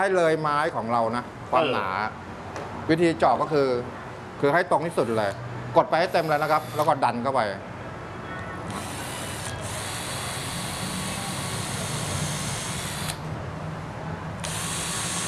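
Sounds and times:
speech: 0.0s - 2.2s, 2.9s - 7.7s
electric drill boring a pilot hole in wood: 6.0s - 6.9s, 8.7s - 13.2s, 14.4s - 15.2s.

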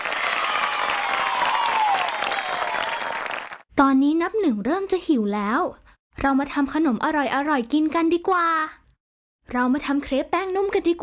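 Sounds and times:
many hands clapping in applause: 0.0s - 3.6s
speech: 3.8s - 8.8s, 9.5s - 11.0s.

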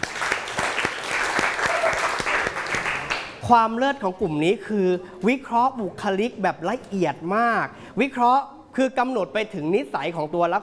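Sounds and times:
audience applause: 0.0s - 3.4s
speech: 3.5s - 10.6s.

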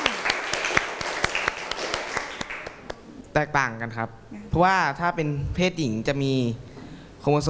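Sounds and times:
classroom of students applauding: 0.0s - 3.0s
speech: 3.4s - 7.4s.

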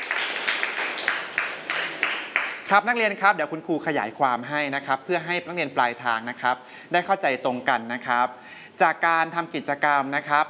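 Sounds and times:
students clapping for a classmate in a classroom: 0.0s - 2.8s
speech: 2.7s - 10.4s.

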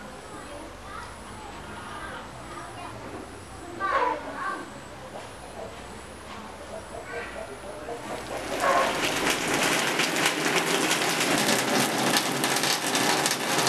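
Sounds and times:
rain falling: 8.0s - 13.6s.

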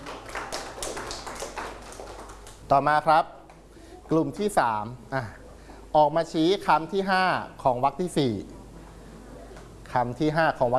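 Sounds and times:
children clapping for a classmate during a lesson: 0.0s - 2.7s
speech: 2.7s - 3.4s, 4.1s - 5.4s, 6.0s - 8.6s, 9.9s - 10.7s.

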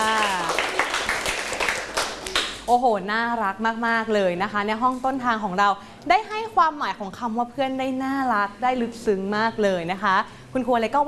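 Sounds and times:
classroom applauding a student: 0.0s - 2.7s
speech: 2.7s - 11.0s.

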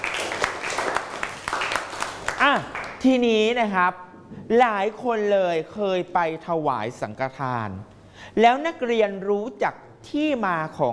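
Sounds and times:
students applauding a classmate in a class: 0.0s - 3.1s
speech: 2.4s - 10.9s.

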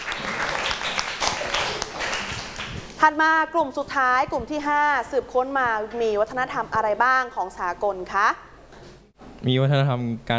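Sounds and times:
applause for a group of students: 0.0s - 2.9s
speech: 3.0s - 8.5s, 9.4s - 10.3s.

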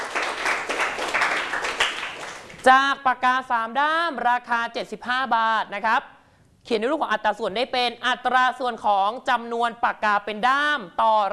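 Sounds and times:
students in a classroom applauding a classmate: 0.0s - 2.7s
speech: 2.6s - 11.3s.

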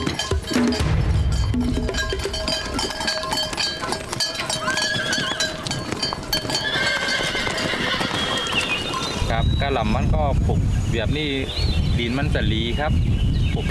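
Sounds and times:
horse hooves clip-clopping on a steep narrow stony trail: 0.0s - 10.2s
low rumble: 0.8s - 3.0s
horse whinnying: 4.5s - 5.9s, 6.5s - 9.1s
speech: 9.8s - 13.6s.

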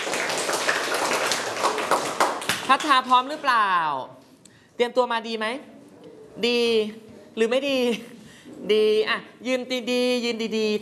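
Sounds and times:
many hands clapping in a classroom: 0.0s - 3.1s
speech: 2.7s - 4.2s, 4.8s - 5.7s, 6.4s - 10.8s.

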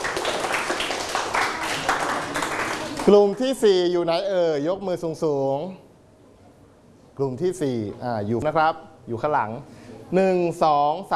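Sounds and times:
group of people applauding during a group activity: 0.0s - 3.4s
speech: 3.1s - 5.8s, 7.2s - 11.1s.

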